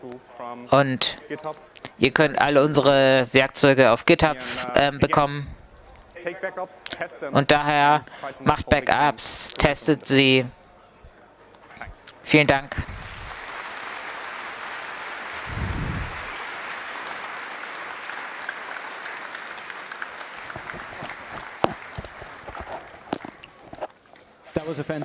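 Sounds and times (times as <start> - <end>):
speech: 0.0 - 5.6, 6.2 - 10.6, 11.8 - 13.0, 24.7 - 25.0
loud individual claps: 12.7 - 22.8
audience applause in a lecture hall after a talk: 12.7 - 23.9
low rumble: 15.5 - 16.3.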